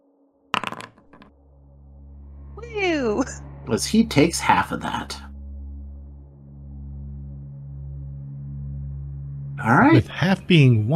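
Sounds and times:
dice clattering onto a hard tabletop: 0:00.6 - 0:01.3
speech: 0:02.6 - 0:05.2, 0:09.7 - 0:10.9.

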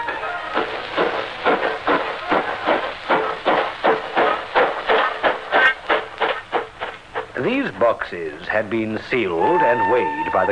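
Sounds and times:
train chugging along railway tracks: 0:00.0 - 0:10.5
speech: 0:07.7 - 0:10.5.

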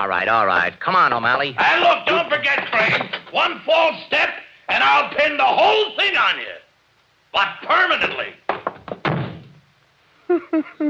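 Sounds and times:
speech: 0:00.0 - 0:06.6, 0:07.3 - 0:08.7, 0:10.3 - 0:10.8
door slamming shut: 0:08.9 - 0:09.6.

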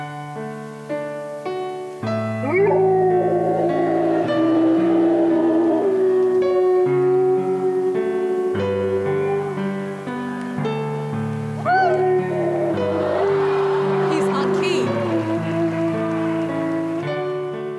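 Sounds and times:
piano chords played by a person: 0:00.0 - 0:17.7
golden retriever howling on key: 0:02.4 - 0:10.0, 0:11.6 - 0:17.7.

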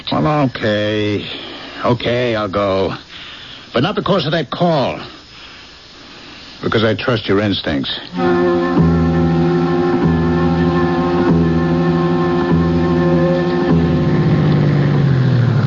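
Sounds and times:
speech: 0:00.1 - 0:03.1, 0:03.7 - 0:05.2, 0:06.6 - 0:08.8
car engine humming while driving and being turned off: 0:08.1 - 0:15.6.

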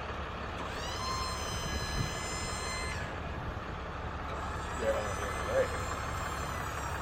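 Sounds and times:
dump truck bed raising with high hydraulic whine: 0:00.0 - 0:07.0
dump truck diesel engine rumbling: 0:00.0 - 0:07.0.

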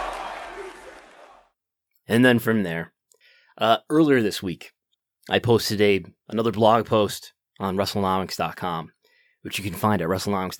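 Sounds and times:
large wrestling crowd roaring and cheering: 0:00.0 - 0:01.4
speech: 0:02.1 - 0:03.0, 0:03.6 - 0:10.5.

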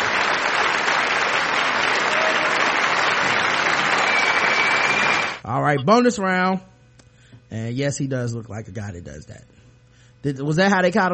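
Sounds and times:
crowd applauding: 0:00.0 - 0:05.4
speech: 0:05.7 - 0:06.7, 0:07.5 - 0:09.6, 0:10.2 - 0:11.1.

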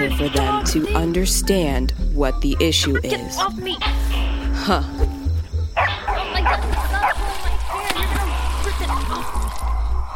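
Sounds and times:
speech: 0:00.1 - 0:05.2
lion dogs barking in short bursts: 0:05.8 - 0:09.4.

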